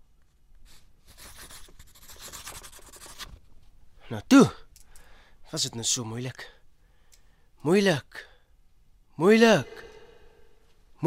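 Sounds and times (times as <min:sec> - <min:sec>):
pen scratching across paper signing a document: 0:01.1 - 0:03.3
speech: 0:04.1 - 0:04.6, 0:05.5 - 0:06.5, 0:07.6 - 0:08.3, 0:09.2 - 0:09.8.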